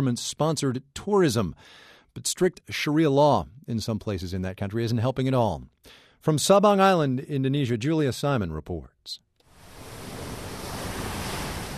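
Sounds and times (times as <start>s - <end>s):
speech: 0.0s - 9.2s
turquoise ocean waves washing onto a white-sand beach on Sabang Island, Indonesia: 9.5s - 11.7s.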